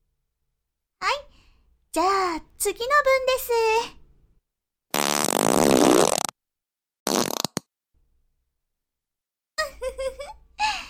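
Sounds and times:
speech: 2.0 - 4.0
long loud buzzing fart: 4.9 - 6.3, 7.1 - 7.7
person giggling: 9.6 - 10.8.

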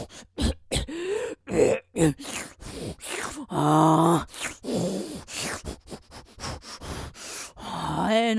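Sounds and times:
gasps and groaning: 0.0 - 8.2
person coughing after choking on a strong smell: 0.4 - 1.0
speech: 1.6 - 2.5.

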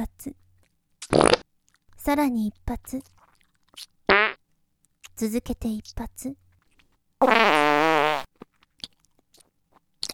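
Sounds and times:
speech: 0.1 - 0.4, 2.0 - 3.2, 5.2 - 6.4, 7.2 - 7.6
loud drawn-out sputtering fart: 1.1 - 1.4, 4.1 - 4.4, 7.2 - 8.3.

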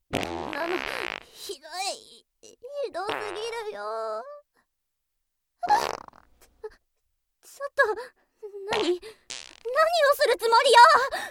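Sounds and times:
loud buzzy fart: 0.1 - 1.4, 3.1 - 3.6, 5.6 - 6.5, 8.7 - 9.7
speech: 0.7 - 4.4, 7.6 - 11.2.

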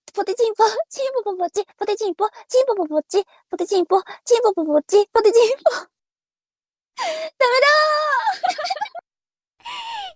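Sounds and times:
speech: 0.2 - 6.0, 7.0 - 9.0
person panting out of breath after a tongue twister: 9.6 - 10.1.

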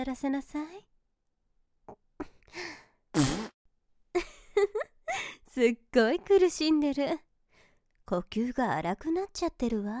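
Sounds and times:
speech: 0.0 - 0.9, 5.6 - 7.3, 8.1 - 9.9
short sputtering fart sounds: 3.2 - 3.5.

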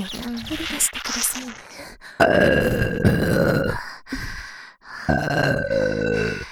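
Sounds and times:
speech: 0.0 - 4.2
long loud throaty burps: 2.2 - 3.9, 5.1 - 6.5.

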